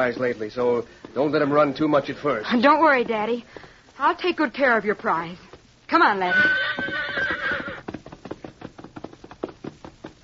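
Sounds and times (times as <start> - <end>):
speech: 0.0 - 7.0
thoroughbred horse hooves trotting in a clip-clop rhythm on open rangeland: 0.0 - 10.2
thoroughbred horse whinnying on open rangeland: 6.2 - 7.9.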